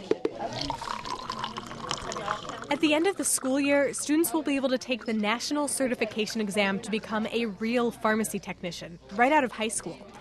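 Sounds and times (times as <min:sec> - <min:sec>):
liquid medication pouring into a container: 0:00.4 - 0:05.3
speech: 0:02.7 - 0:10.1.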